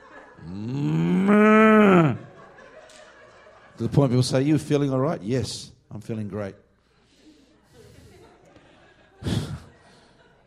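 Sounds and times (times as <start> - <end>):
laughter: 0.0 - 4.4, 7.4 - 10.4
human voice imitating a cow moo: 0.4 - 2.3
speech: 0.5 - 1.5, 3.8 - 6.6.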